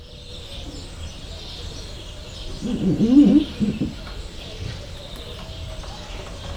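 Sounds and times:
white-handed gibbon rubbing its nose on window glass in a zoo: 2.4 - 4.8.

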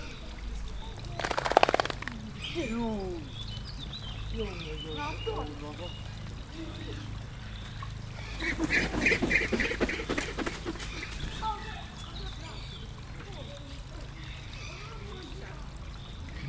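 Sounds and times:
marabou stork drinking in Debrecen zoo: 0.0 - 16.4
marabou stork flying up onto a tree in Debrecen zoo: 0.8 - 2.6, 8.3 - 12.5.

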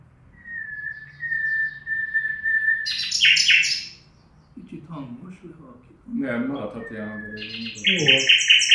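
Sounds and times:
nightingale singing from cover in a dense bush: 0.4 - 4.7, 6.4 - 8.7
speech: 5.0 - 8.6.

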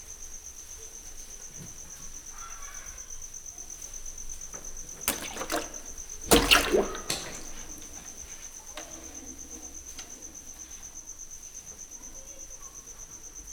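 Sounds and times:
60 cm alligator snapping turtle biting a crucian carp thrown into water: 5.1 - 8.0.

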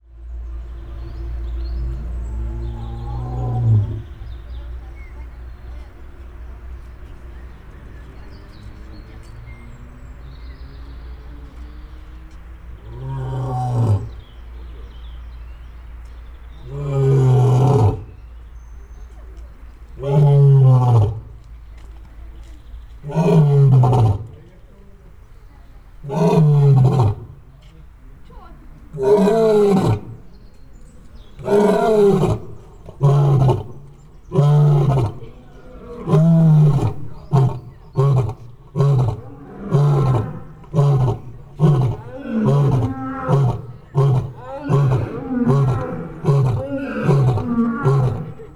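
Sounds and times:
male and female lions roaring: 1.7 - 4.3, 12.8 - 14.3, 16.6 - 18.2, 19.9 - 21.4, 23.0 - 24.4, 26.0 - 27.5, 28.8 - 30.4, 31.1 - 48.5.

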